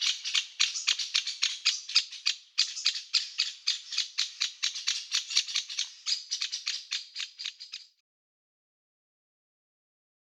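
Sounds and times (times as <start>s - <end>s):
woodpecker giving grating scratchy calls: 0.0s - 8.0s.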